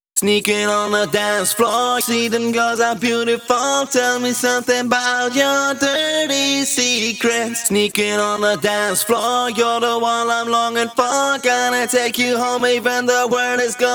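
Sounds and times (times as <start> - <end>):
pitched wet vocals at 128 BPM: 0.2 - 13.9.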